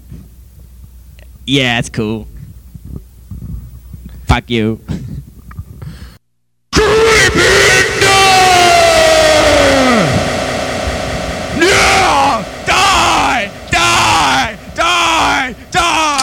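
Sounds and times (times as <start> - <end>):
speech: 1.5 - 2.3, 4.3 - 5.0
people shouting frantically: 6.7 - 10.3, 11.6 - 16.2
people screaming and yelling: 6.7 - 16.2.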